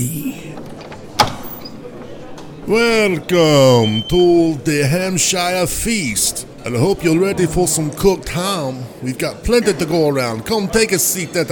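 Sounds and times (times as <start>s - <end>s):
speech: 0.0s - 0.8s, 2.6s - 11.5s
door opening with a click-and-thud: 0.5s - 2.5s.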